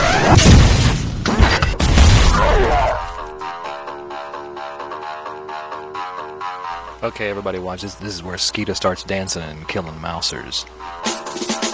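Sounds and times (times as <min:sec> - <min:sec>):
BFG weapon blast from a video game: 0:00.0 - 0:03.2
speech: 0:07.0 - 0:11.6.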